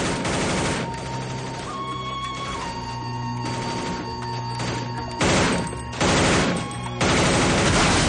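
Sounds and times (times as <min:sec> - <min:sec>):
heavy gunfire during a shootout at a doorway: 0:00.0 - 0:01.8, 0:03.5 - 0:08.0
sustained musical score of an action thriller: 0:00.0 - 0:08.0.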